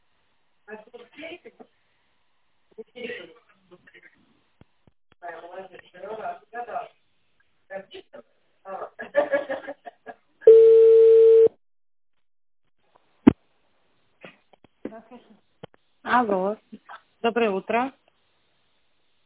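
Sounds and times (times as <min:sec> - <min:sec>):
telephone ringing tone during a call transfer: 0:10.5 - 0:11.5
speech: 0:17.3 - 0:18.0.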